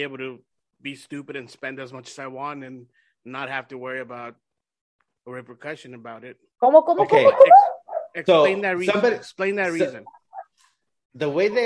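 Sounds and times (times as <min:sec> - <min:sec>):
speech: 0:00.0 - 0:04.4, 0:05.2 - 0:10.2, 0:11.1 - 0:11.6
dog giving high yelping barks: 0:07.3 - 0:08.2.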